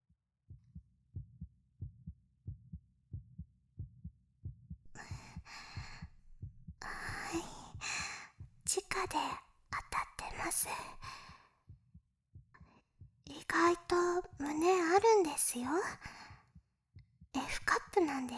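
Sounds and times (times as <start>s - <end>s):
heartbeat: 0.7s - 16.5s
soft breathy exhalations and a long sigh: 4.9s - 6.2s, 6.8s - 8.4s, 10.8s - 11.4s
speech: 10.5s - 11.1s, 13.6s - 16.1s, 18.0s - 18.3s.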